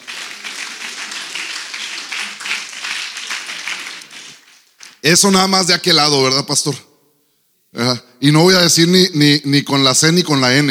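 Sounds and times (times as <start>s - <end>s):
crowd applauding: 0.0s - 5.4s
speech: 5.0s - 6.9s, 7.8s - 10.6s.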